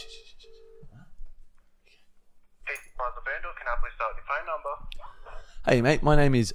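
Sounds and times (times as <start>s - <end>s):
telephone ringing tone through a phone line: 0.0s - 0.9s
speech: 2.7s - 6.5s.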